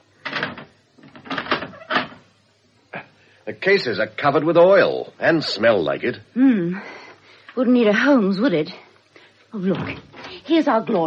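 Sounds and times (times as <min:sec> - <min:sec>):
front door being closed and locked: 0:00.2 - 0:02.2
speech: 0:03.4 - 0:07.0, 0:07.6 - 0:08.8, 0:09.5 - 0:11.0.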